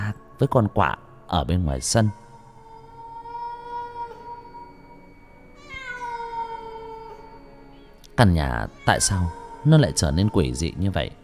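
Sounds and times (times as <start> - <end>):
speech: 0.4 - 2.2, 8.2 - 11.2
cat meowing in the distance: 5.6 - 7.4, 8.7 - 10.2.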